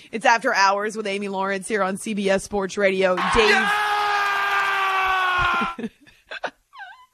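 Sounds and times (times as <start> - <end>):
speech: 0.0 - 3.9, 5.6 - 6.0
man screaming and yelling wildly: 3.2 - 5.8
laughter: 5.2 - 6.6.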